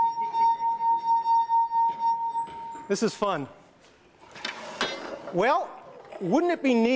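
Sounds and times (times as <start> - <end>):
wine glass singing as its rim is rubbed: 0.0 - 3.0
speech: 2.9 - 3.6, 5.3 - 6.9.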